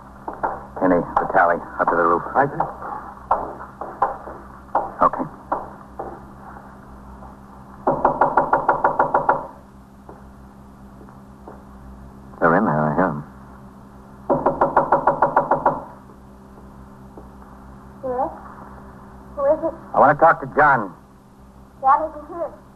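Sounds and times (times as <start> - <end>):
low hum: 0.0 - 22.7
police officer knocking firmly on a front door: 0.3 - 6.3, 7.8 - 9.6, 14.3 - 16.0
speech: 0.9 - 3.0, 20.2 - 21.0.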